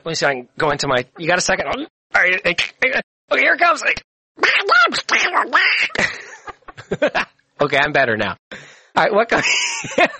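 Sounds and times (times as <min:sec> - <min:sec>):
speech: 0:00.0 - 0:10.1
voice imitating cartoon duck quacks: 0:04.4 - 0:06.0
laughter: 0:05.5 - 0:07.3, 0:09.3 - 0:10.1.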